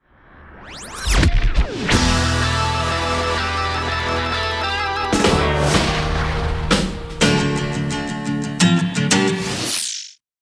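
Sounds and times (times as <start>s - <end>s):
rock music bumper: 1.6s - 9.5s.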